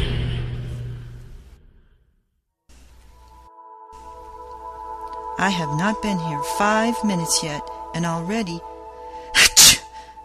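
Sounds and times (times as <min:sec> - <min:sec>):
speech: 0:05.4 - 0:08.7
person sneezing: 0:09.3 - 0:10.0.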